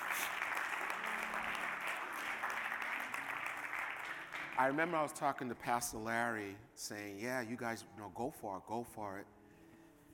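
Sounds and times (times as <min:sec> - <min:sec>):
audience clapping: 0:00.0 - 0:05.2
speech: 0:04.6 - 0:09.4.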